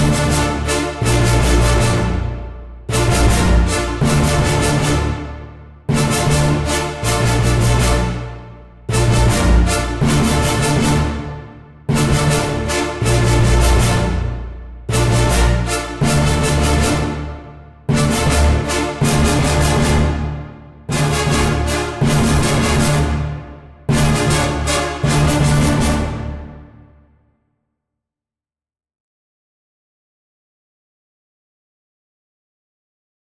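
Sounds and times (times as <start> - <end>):
full ensemble playing tutti: 0.1 - 26.5.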